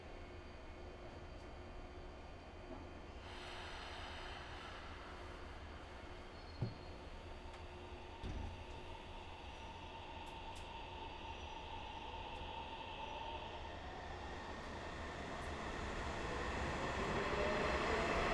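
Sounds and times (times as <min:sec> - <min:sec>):
train rumbling as it pulls away from a station: 0:02.6 - 0:18.3.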